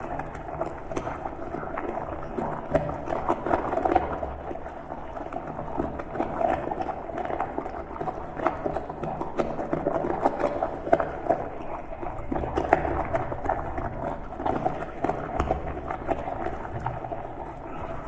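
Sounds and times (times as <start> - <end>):
human ambience loop: 0.0 - 18.0.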